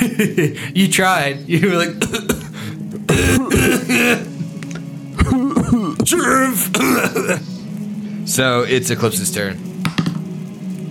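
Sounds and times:
laughter: 0:00.0 - 0:00.6
speech: 0:00.2 - 0:02.4, 0:03.2 - 0:04.3, 0:06.1 - 0:07.6, 0:08.3 - 0:10.1
harsh rasping coughing fit: 0:02.0 - 0:04.3, 0:05.2 - 0:07.4.

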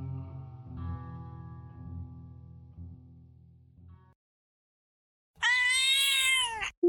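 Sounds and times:
black cat meowing: 0:05.4 - 0:06.8.

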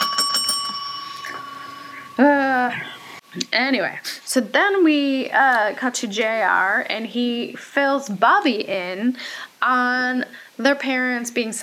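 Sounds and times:
small bell ringing: 0:00.0 - 0:03.2
speech: 0:02.2 - 0:11.6.

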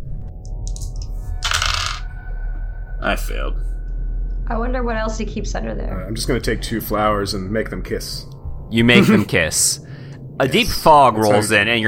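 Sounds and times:
dice tumbling across a hard surface: 0:00.7 - 0:02.0
speech: 0:03.0 - 0:03.8, 0:04.5 - 0:11.8.

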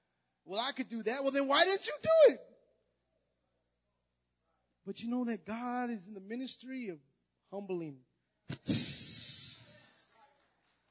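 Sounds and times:
speech: 0:00.5 - 0:02.5, 0:04.8 - 0:09.2
voice imitating air hissing out of a balloon: 0:08.5 - 0:10.2.

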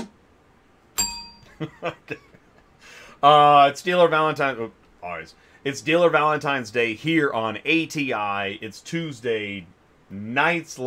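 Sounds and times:
muted bell strike with damped metallic tone: 0:01.0 - 0:01.5
speech: 0:01.6 - 0:10.8.

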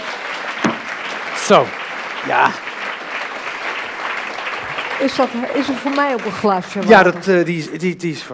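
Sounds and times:
audience applause: 0:00.0 - 0:07.9
speech: 0:01.5 - 0:02.7, 0:05.0 - 0:08.3.

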